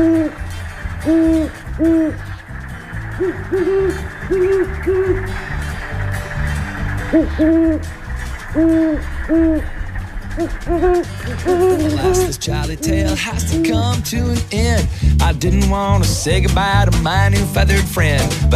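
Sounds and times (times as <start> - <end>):
speech: 0.0 - 2.3, 3.2 - 5.5, 7.1 - 7.9, 8.5 - 9.8, 10.4 - 18.5
two great horned owls hooting in duet: 0.0 - 14.0.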